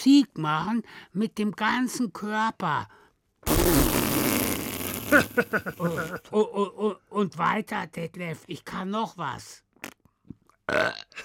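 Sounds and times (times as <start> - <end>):
speech: 0.0 - 4.4, 5.1 - 10.0, 10.7 - 11.2
loud drawn-out burp: 3.5 - 6.2, 10.7 - 11.2.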